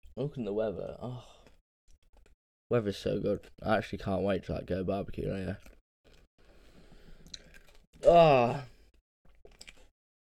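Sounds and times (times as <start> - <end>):
speech: 0.2 - 1.4, 2.7 - 5.8, 8.0 - 8.7
person crunching a hard throat lozenge: 7.2 - 8.1, 8.9 - 9.9.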